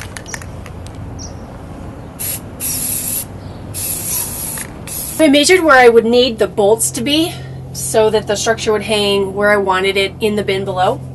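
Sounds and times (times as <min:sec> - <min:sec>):
low rumble: 0:00.0 - 0:11.1
aerosol spray paint hissing onto steel: 0:02.2 - 0:05.5
speech: 0:05.2 - 0:11.1.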